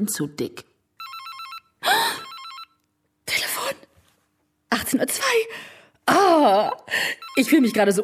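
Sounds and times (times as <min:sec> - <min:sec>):
speech: 0:00.0 - 0:00.7, 0:04.9 - 0:08.0
telephone bell ringing in a home: 0:01.0 - 0:02.8, 0:06.6 - 0:08.0.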